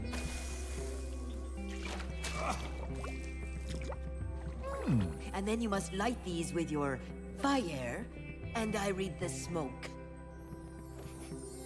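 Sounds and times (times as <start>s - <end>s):
liquid splashing and dripping: 0.0s - 4.7s
speech: 2.4s - 3.0s, 4.8s - 10.0s.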